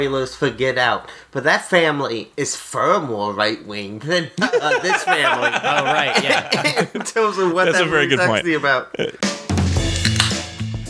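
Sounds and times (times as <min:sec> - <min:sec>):
speech: 0:00.0 - 0:09.3
faint murmur: 0:04.4 - 0:09.2
laughter: 0:04.4 - 0:09.2
can of sparkling water opening with metallic crack and fizzy hiss: 0:10.0 - 0:10.6.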